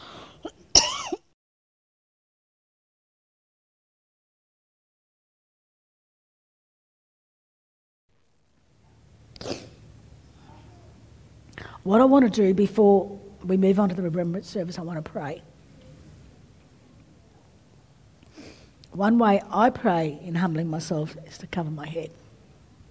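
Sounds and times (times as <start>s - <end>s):
person coughing: 0.4s - 1.2s
speech: 11.8s - 15.5s, 18.9s - 22.2s.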